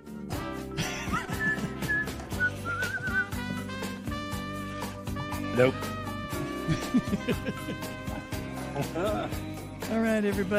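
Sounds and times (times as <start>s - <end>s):
full steady-beat music track with instruments: 0.0s - 10.5s
person whistling a short melody of sliding high notes: 0.7s - 3.9s
laughter: 0.8s - 3.6s, 6.5s - 9.6s
speech: 5.6s - 6.0s, 6.7s - 8.0s, 8.8s - 10.5s.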